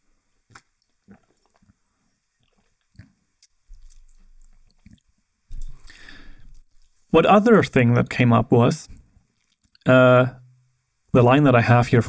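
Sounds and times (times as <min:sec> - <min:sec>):
swallowing: 0:00.5 - 0:06.9
sipping hot drink: 0:00.5 - 0:07.0
speech: 0:07.1 - 0:09.0, 0:09.8 - 0:10.4, 0:11.1 - 0:12.0.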